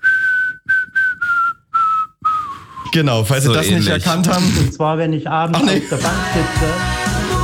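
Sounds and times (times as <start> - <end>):
person whistling a melody: 0.0 - 2.9
speech: 2.9 - 7.3.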